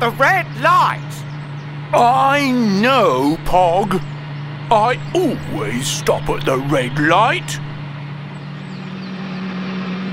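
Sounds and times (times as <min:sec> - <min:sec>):
speech: 0:00.0 - 0:01.2, 0:01.9 - 0:04.1, 0:04.7 - 0:07.7
engine drone of a new car being driven: 0:00.0 - 0:10.1.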